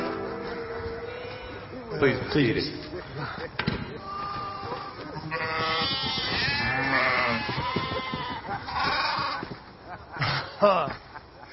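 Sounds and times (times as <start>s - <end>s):
laughter: 0.5s - 5.5s, 7.6s - 8.9s, 9.6s - 11.5s
speech: 2.3s - 2.9s, 10.6s - 11.0s
sheep bleating: 4.1s - 9.4s.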